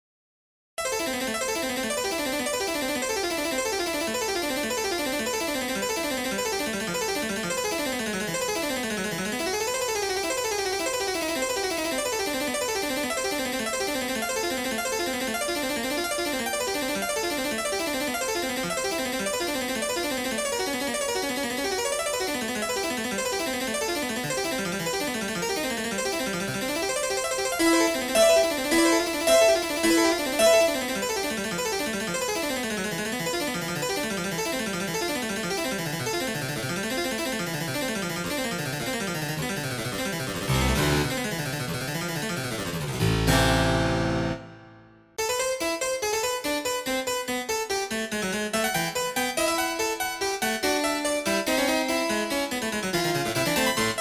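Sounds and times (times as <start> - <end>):
harpsichord: 0.8 - 54.0.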